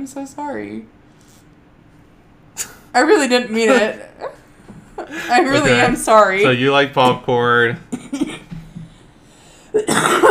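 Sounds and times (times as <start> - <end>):
speech: 0.0 - 1.0, 2.6 - 4.4, 5.1 - 8.3
laughter: 3.5 - 6.1
single short dry allergy cough: 9.8 - 10.2.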